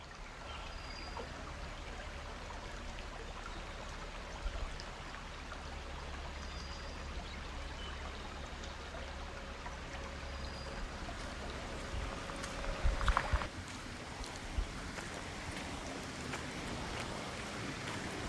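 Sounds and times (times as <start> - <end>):
stream flowing and babbling: 0.0 - 18.2.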